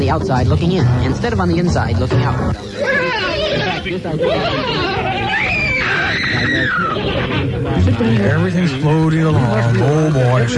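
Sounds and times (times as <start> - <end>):
speech: 0.0 - 10.5
crowd screaming during ritual dance: 2.6 - 7.7
laughter: 2.6 - 10.5.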